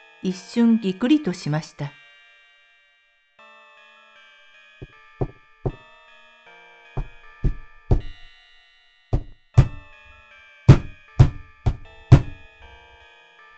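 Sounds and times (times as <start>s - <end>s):
speech: 0.2s - 2.0s
light tapping from the ceiling above: 7.0s - 8.3s, 9.2s - 9.9s, 10.7s - 12.5s.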